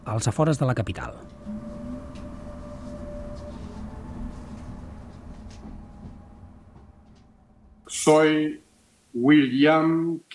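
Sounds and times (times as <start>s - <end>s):
faint tonal whine: 0.0s - 10.2s
speech: 0.1s - 1.6s, 8.0s - 8.6s, 9.2s - 10.3s
moving train rumbling heard from inside a railway carriage: 0.8s - 9.0s.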